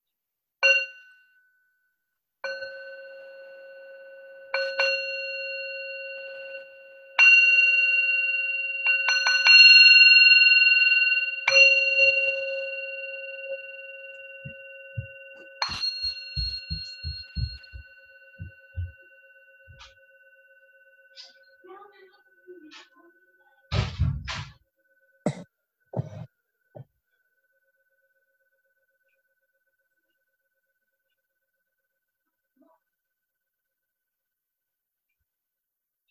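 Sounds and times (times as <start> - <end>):
meditation bell ringing to introduce a meditation: 2.4 - 23.6
soft low rhythmic thumps: 14.4 - 20.0, 25.3 - 26.9.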